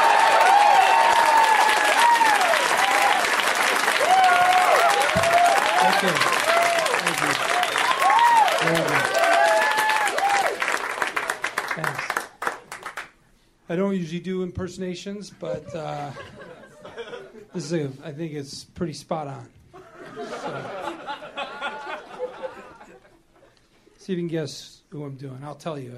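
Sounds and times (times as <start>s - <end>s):
comedy-club audience whoops and cheers: 0.0s - 10.8s
comedy-club audience applauding a surprise guest: 0.0s - 13.1s
laughter: 7.0s - 7.6s, 15.4s - 17.6s, 19.8s - 23.2s
speech: 13.7s - 16.4s, 17.6s - 19.6s, 24.1s - 25.9s.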